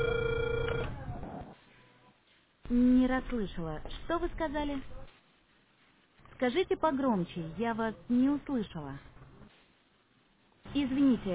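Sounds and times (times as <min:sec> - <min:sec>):
telephone ringback tone while placing a call: 0:00.0 - 0:01.2
speech: 0:02.7 - 0:05.0, 0:06.4 - 0:09.1, 0:10.8 - 0:11.3.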